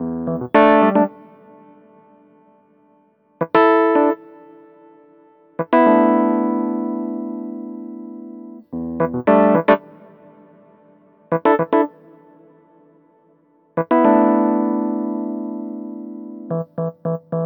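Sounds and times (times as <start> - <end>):
electric piano playing nu jazz in E major: 0.0 - 1.4, 5.6 - 9.9, 11.3 - 12.0, 13.8 - 17.4.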